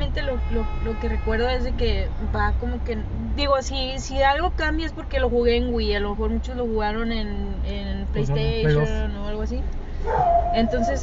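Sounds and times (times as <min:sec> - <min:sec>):
steady low hum: 0:00.0 - 0:11.0
speech: 0:00.2 - 0:11.0
dog whiny bark indoors: 0:10.0 - 0:11.0.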